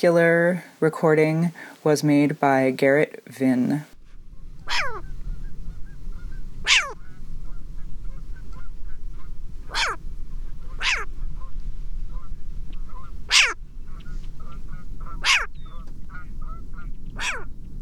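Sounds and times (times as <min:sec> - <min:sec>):
speech: 0:00.0 - 0:04.0, 0:04.7 - 0:05.1
steady low rumble of noise: 0:04.0 - 0:17.7
short-eared owl harsh raspy barking calls: 0:04.6 - 0:17.5.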